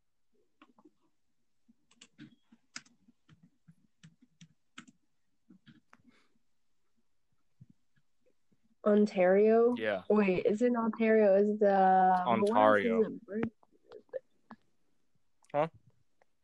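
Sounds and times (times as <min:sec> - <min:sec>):
typing on a computer keyboard: 0:01.8 - 0:05.0
speech: 0:08.8 - 0:13.5, 0:15.6 - 0:15.8
low hum: 0:08.8 - 0:14.2.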